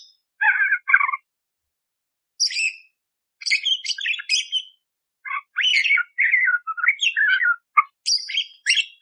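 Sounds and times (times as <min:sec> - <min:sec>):
budgerigar warbling chatter: 0:00.4 - 0:01.2, 0:05.3 - 0:08.9.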